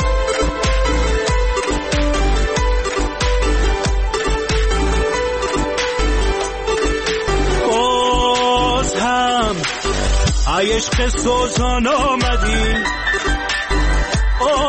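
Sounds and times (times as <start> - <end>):
instrumental song intro with melodic arrangement over a steady beat: 0.0 - 14.6
speech: 10.7 - 13.3.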